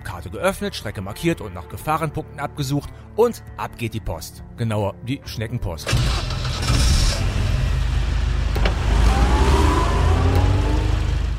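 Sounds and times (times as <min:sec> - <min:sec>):
speech: 0:00.2 - 0:06.3
heavy truck engine droning in a truck-driving video game: 0:05.9 - 0:11.3.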